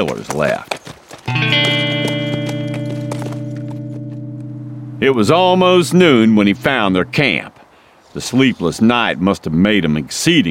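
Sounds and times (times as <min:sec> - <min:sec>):
speech: 0:00.0 - 0:01.7, 0:05.0 - 0:07.5, 0:08.2 - 0:10.4
hoofbeats of a horse ridden off at a gallop: 0:00.0 - 0:04.4
steady droning tone: 0:01.4 - 0:07.4.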